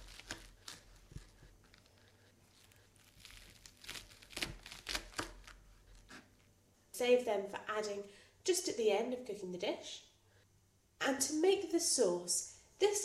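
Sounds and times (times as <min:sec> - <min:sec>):
knife slicing spring onions on a board: 0:00.0 - 0:06.3
speech: 0:07.0 - 0:10.1, 0:11.1 - 0:13.0.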